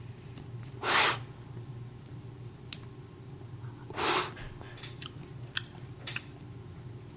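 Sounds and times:
low hum: 0:00.0 - 0:07.1
breathy inhaling of cannabis smoke: 0:00.8 - 0:01.3, 0:03.6 - 0:04.8.

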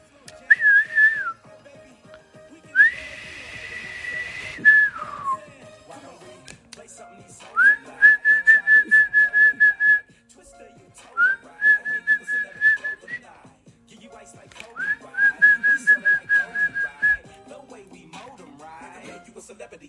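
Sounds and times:
person whistling a tune: 0:00.3 - 0:01.5, 0:02.6 - 0:05.5, 0:07.5 - 0:10.1, 0:11.1 - 0:13.3, 0:14.7 - 0:17.3.

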